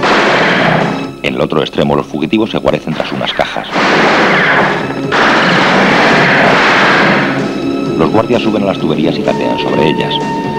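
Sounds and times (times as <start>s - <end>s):
gunfire from guards shooting through a hole in pipes: 0.0s - 1.1s, 3.0s - 7.8s
speech: 1.2s - 5.3s, 8.0s - 10.5s.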